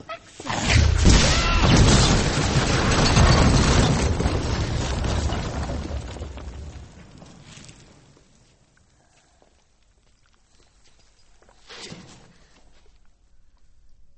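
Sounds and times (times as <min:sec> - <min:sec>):
explosion from a magical blasting spell with heavy rumbling roar: 0:00.6 - 0:07.0.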